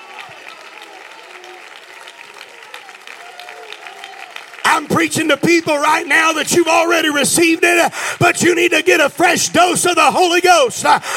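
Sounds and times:
large congregation clapping steadily: 0.0 - 8.9
congregation cheering with scattered voices shouting: 0.0 - 11.1
speech: 4.8 - 11.1.

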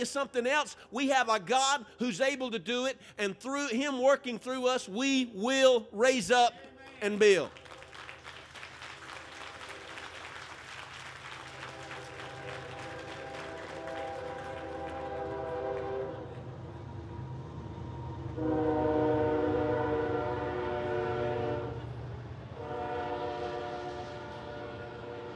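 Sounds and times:
speech: 0.0 - 7.6
rumble of rail noise from a passing train: 7.6 - 25.3
train horn blasts: 11.5 - 16.6, 18.3 - 25.3.

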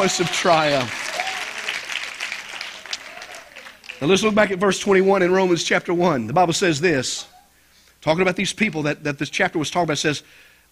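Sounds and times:
speech: 0.0 - 1.0, 4.0 - 7.3, 8.0 - 10.5
audience clapping: 0.0 - 4.4.

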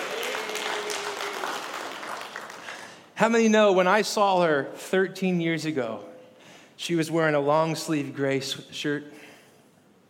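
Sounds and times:
crowd applauding: 0.0 - 3.0
speech: 3.2 - 6.1, 6.8 - 9.2.

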